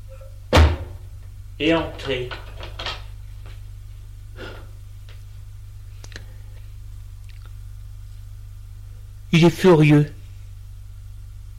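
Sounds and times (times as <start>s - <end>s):
quiet hum: 0.0s - 11.5s
door shutting with heavy thud: 0.5s - 1.0s
speech: 1.6s - 2.5s, 9.3s - 10.2s.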